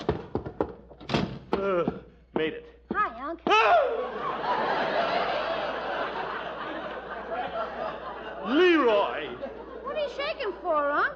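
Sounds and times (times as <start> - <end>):
stuck house door at the porch thunking and rattling as it is forced: 0.0 - 1.5
speech: 1.6 - 5.0, 10.1 - 11.1
laughter: 3.6 - 11.1.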